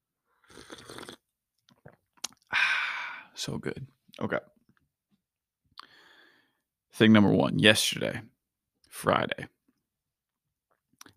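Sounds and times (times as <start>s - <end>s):
slurping a hot morning brew: 0.4s - 2.0s
swallowing: 0.5s - 2.5s
breathy exhale: 2.5s - 3.4s
speech: 3.4s - 4.6s, 7.0s - 8.3s, 8.9s - 9.6s.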